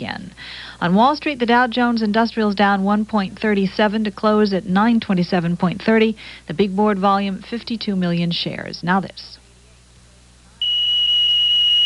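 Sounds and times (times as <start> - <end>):
speech: 0.8 - 9.4
smoke alarm set off by cigarette smoke: 10.6 - 11.8.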